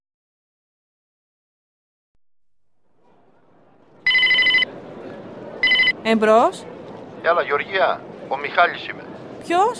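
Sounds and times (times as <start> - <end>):
low murmur of noise: 2.9 - 9.7
telephone ringing in a bright electronic burst: 4.0 - 4.7, 5.6 - 6.0
speech: 6.0 - 9.7.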